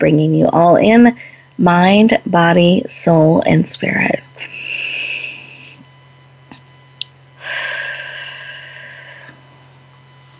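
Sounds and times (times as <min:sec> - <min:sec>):
speech: 0:00.0 - 0:04.5
steady low hum: 0:00.0 - 0:10.3
deep guided breathing: 0:04.4 - 0:05.8, 0:07.4 - 0:09.5.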